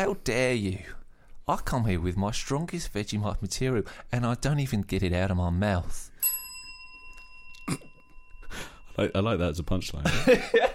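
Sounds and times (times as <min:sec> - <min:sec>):
speech: 0:00.0 - 0:06.1, 0:08.5 - 0:10.7
bell ringing with a bright metallic tone: 0:06.2 - 0:09.7.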